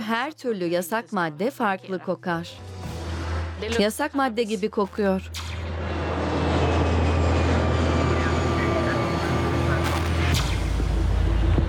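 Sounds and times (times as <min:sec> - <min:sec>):
speech: 0:00.1 - 0:02.8, 0:03.6 - 0:05.4
airplane landing roar: 0:05.5 - 0:11.6.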